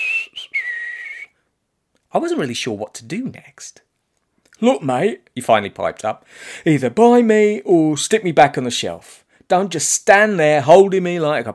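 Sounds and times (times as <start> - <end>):
soft high whistled tune: 0.0 - 1.4
speech: 2.1 - 3.9, 4.6 - 11.5.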